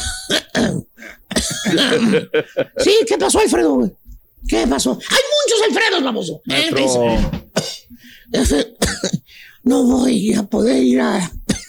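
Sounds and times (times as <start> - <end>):
person fake coughing on a phone call: 0.0 - 2.2, 8.4 - 9.2, 11.5 - 11.6
speech: 1.7 - 7.7, 8.3 - 11.6.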